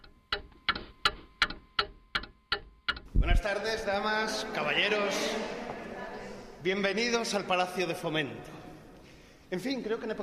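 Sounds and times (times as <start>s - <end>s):
clock ticking: 0.0s - 3.2s
speech: 3.3s - 5.7s, 6.6s - 8.6s, 9.5s - 10.2s.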